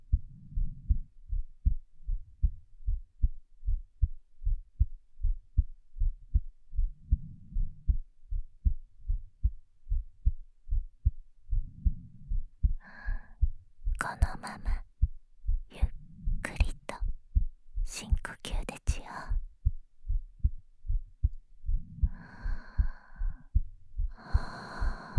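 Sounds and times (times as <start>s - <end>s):
steady heartbeat thumping low: 0.0s - 18.7s, 19.3s - 25.1s.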